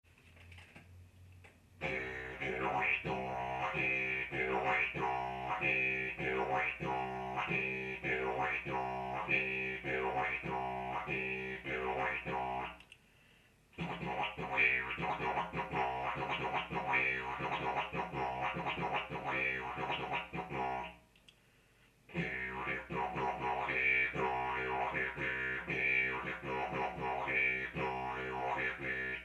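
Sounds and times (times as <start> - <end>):
didgeridoo rhythm played with the tongue: 1.8 - 12.8, 13.8 - 21.0, 22.1 - 29.2.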